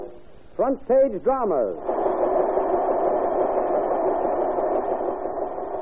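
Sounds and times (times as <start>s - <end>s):
speech: 0.7s - 2.0s
giant printing presses running at full speed printing a newspaper magazine: 1.7s - 5.8s.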